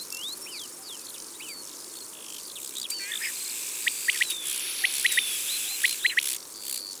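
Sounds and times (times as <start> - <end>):
common quail calling in Isere: 3.0 - 6.3.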